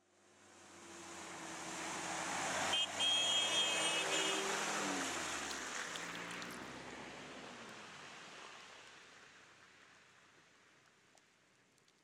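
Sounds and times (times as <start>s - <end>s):
car splashing through water: 1.0s - 9.8s.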